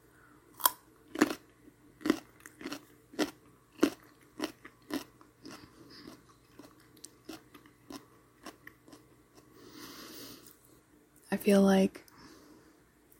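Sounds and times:
crunching and chewing raw carrot sticks: 0.6 - 9.5
speech: 11.3 - 12.0.

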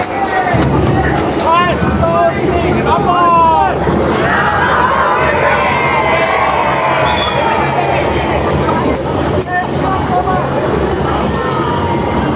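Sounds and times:
large crowd cheering and shouting: 0.0 - 12.2
whoops and whistles: 7.0 - 7.6.

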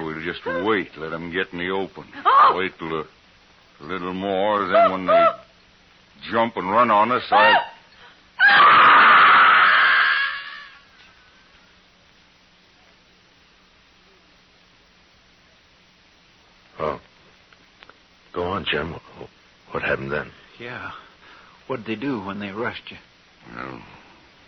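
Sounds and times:
speech: 0.2 - 3.2, 3.8 - 5.4, 6.2 - 7.7, 21.7 - 24.0
woman letting out a loud shrill scream: 2.2 - 2.6, 7.3 - 7.8, 8.4 - 10.8.

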